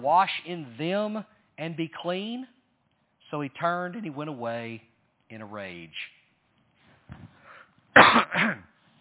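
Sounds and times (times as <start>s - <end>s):
speech: 0.0s - 2.6s, 3.3s - 6.2s, 7.1s - 7.4s, 8.0s - 8.7s
person clearing throat: 8.0s - 8.8s
person coughing: 8.0s - 8.8s.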